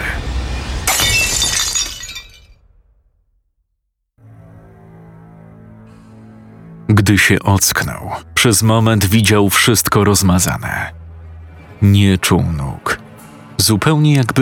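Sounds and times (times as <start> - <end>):
large glass vase shattering: 0.8 - 2.8
low sustained musical drone: 4.2 - 14.4
speech: 7.1 - 11.0, 11.8 - 13.0, 13.6 - 14.4.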